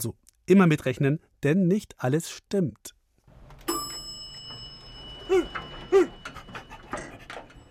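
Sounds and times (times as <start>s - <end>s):
speech: 0.0s - 3.0s
dog whimpering: 5.3s - 7.5s.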